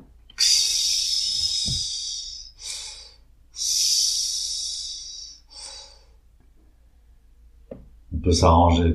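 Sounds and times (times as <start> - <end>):
deep breaths exhaled during a breathing exercise: 0.4 - 6.2
speech: 8.2 - 8.9.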